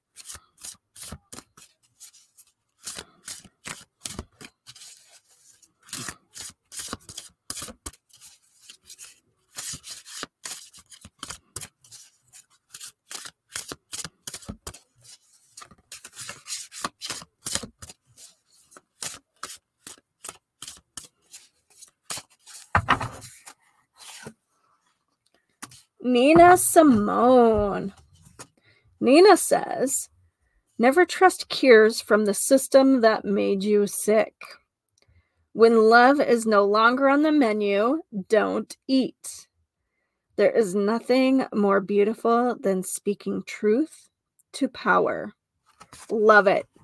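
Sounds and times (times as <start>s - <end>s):
deck of music oracle cards being shuffled: 0.2s - 24.4s, 25.6s - 28.5s, 45.7s - 46.2s
louder thump: 22.7s - 23.3s
speech: 26.1s - 28.0s, 29.0s - 30.1s, 30.8s - 34.4s, 35.6s - 39.2s, 40.4s - 46.7s.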